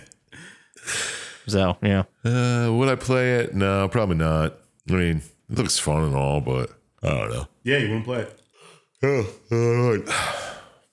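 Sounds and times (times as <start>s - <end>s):
speech: 1.5s - 8.4s, 9.0s - 10.4s
person yawning: 10.0s - 10.8s.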